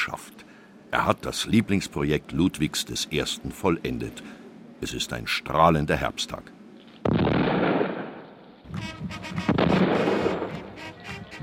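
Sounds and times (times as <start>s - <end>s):
speech: 0.0s - 7.7s
ceremonial cannon salute blasts: 7.0s - 11.4s.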